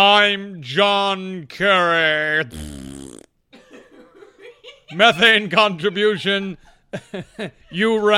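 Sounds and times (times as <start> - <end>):
speech: 0.0 - 2.9, 4.9 - 8.1
mouth-made fart noise: 2.4 - 3.4
laughter: 3.6 - 8.1.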